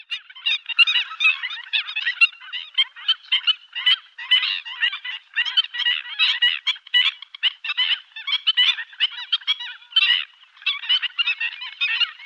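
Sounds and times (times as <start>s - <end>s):
black-winged stilt sharp nasal yelping calls: 0.0s - 12.2s.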